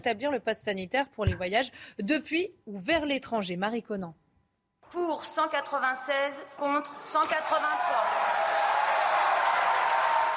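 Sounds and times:
speech: 0:00.0 - 0:04.2, 0:04.9 - 0:08.4
deputies applauding in the National Assembly hemicycle: 0:06.8 - 0:10.3.

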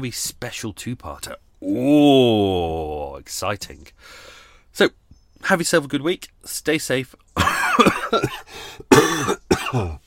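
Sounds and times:
speech: 0:00.0 - 0:07.5, 0:08.1 - 0:10.0
harsh throaty raspy coughs: 0:07.4 - 0:10.0.

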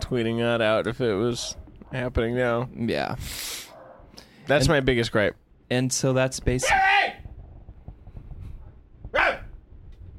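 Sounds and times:
speech: 0:00.1 - 0:03.6, 0:04.5 - 0:07.2
dog bark: 0:03.7 - 0:04.1, 0:09.2 - 0:09.5.

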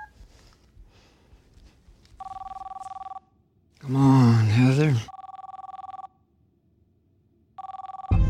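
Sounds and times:
telephone ringing: 0:02.2 - 0:03.3, 0:05.1 - 0:06.2, 0:07.6 - 0:08.2
speech: 0:03.9 - 0:04.1, 0:04.8 - 0:05.1.

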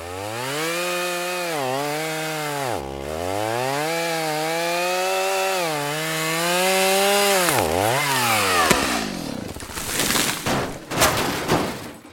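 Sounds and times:
chainsaw cutting a tree: 0:00.0 - 0:11.2
tree cracking and crashing onto a car: 0:07.1 - 0:12.0.

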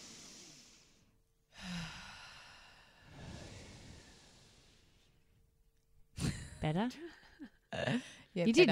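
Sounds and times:
long audible exhale: 0:00.0 - 0:05.2
slow deep breath drawn in through the mouth: 0:00.0 - 0:05.3
speech: 0:06.6 - 0:08.6.

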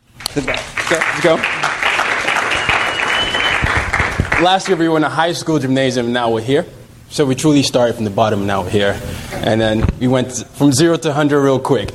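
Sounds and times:
crowd applauding: 0:00.2 - 0:04.9
speech: 0:00.4 - 0:01.8, 0:04.4 - 0:11.9.

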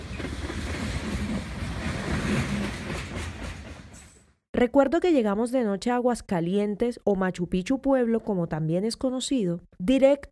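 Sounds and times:
train bound for Aguas Calientes rumbling along railway tracks: 0:00.0 - 0:04.4
speech: 0:04.6 - 0:10.2.

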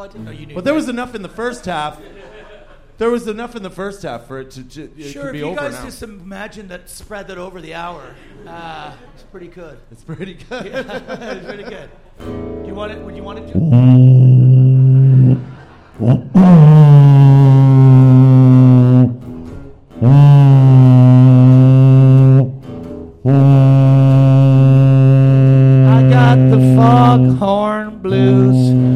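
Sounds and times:
speech: 0:00.0 - 0:02.3, 0:03.0 - 0:14.2, 0:16.0 - 0:16.8
laughter: 0:01.3 - 0:03.0, 0:08.1 - 0:09.4, 0:10.0 - 0:12.2, 0:14.8 - 0:16.4
foghorn-like blues music: 0:12.3 - 0:28.9.

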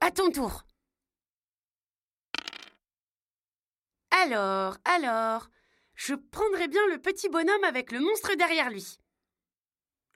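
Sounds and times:
speech: 0:00.1 - 0:00.7, 0:04.1 - 0:09.0
dice clattering across a hard surface: 0:02.4 - 0:02.8.

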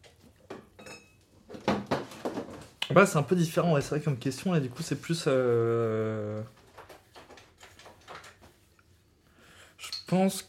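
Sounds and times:
porcelain plate and cutlery clinking while serving: 0:00.8 - 0:01.2
speech: 0:02.9 - 0:06.6, 0:10.1 - 0:10.4.

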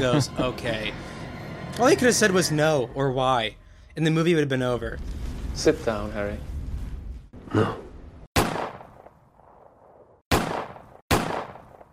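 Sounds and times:
speech: 0:00.0 - 0:01.1, 0:01.8 - 0:06.5, 0:07.5 - 0:07.8
distant rifle shots in a film scene: 0:08.4 - 0:09.2, 0:10.3 - 0:11.9.

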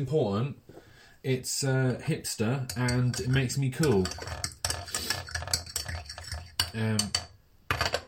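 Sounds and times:
speech: 0:00.0 - 0:00.6, 0:01.2 - 0:04.6, 0:06.8 - 0:07.2
ceramic teapot and cup clinking as tea is poured: 0:02.6 - 0:08.0
already-brewed tea pouring from a teapot: 0:02.7 - 0:07.2.

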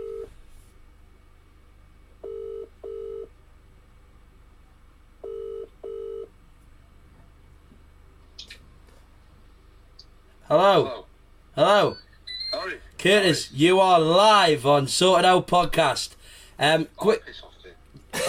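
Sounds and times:
WhatsApp call ringing tone of steady electronic beeps: 0:05.2 - 0:06.3
speech: 0:10.5 - 0:11.0, 0:11.6 - 0:12.0, 0:13.0 - 0:17.5.

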